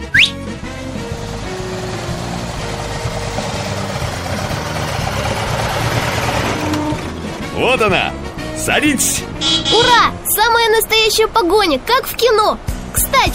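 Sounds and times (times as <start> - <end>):
rising whine: 0.0 - 7.2
car engine running: 0.1 - 8.1
speech: 7.6 - 13.3.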